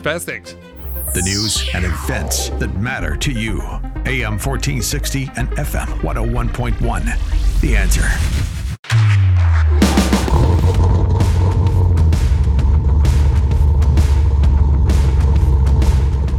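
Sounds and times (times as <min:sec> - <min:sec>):
speech: 0:00.0 - 0:08.5
car engine starting and rumbling: 0:09.8 - 0:16.3.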